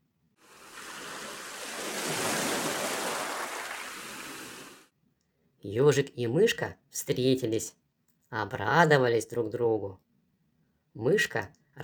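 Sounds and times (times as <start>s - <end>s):
ocean wave washing onto shore: 0.4s - 4.9s
speech: 5.6s - 10.0s, 11.0s - 11.8s.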